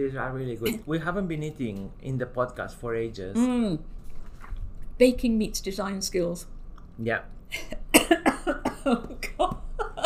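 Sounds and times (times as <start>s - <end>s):
speech: 0.0s - 4.0s, 5.0s - 8.2s, 8.8s - 9.6s
person coughing after inhaling a shortbread biscuit: 8.0s - 9.0s.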